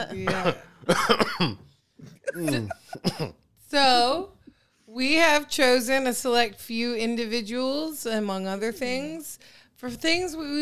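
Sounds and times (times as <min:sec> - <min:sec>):
speech: 0:00.0 - 0:01.7, 0:02.4 - 0:04.3, 0:05.0 - 0:10.5
person clearing throat: 0:00.0 - 0:03.4.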